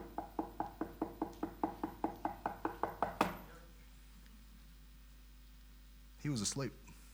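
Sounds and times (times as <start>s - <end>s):
rapid knocking on a door: 0.0s - 3.5s
speech: 6.3s - 6.9s.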